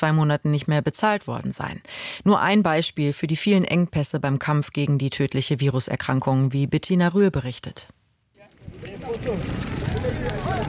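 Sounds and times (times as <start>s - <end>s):
speech: 0.0s - 8.0s, 8.8s - 10.6s
fire burning cardboard, wood and car tires: 8.3s - 10.6s.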